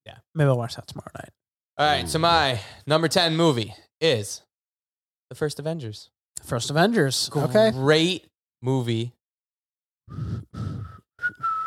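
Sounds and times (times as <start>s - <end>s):
speech: 0.4s - 4.5s, 5.3s - 9.2s, 10.1s - 11.5s
person whistling a film theme tune into a microphone: 10.1s - 11.6s.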